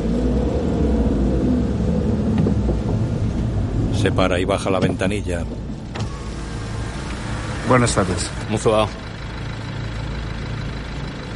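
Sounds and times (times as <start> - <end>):
car engine rumble creeping forward in a line of cars: 0.0 - 11.3
speech: 4.0 - 5.7, 7.7 - 9.0.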